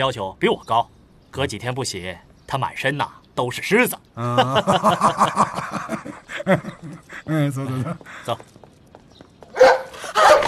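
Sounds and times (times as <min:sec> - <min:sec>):
speech: 0:00.0 - 0:08.6
laughter: 0:04.2 - 0:08.4
dog on an iron chain barking in a yard: 0:09.6 - 0:10.4.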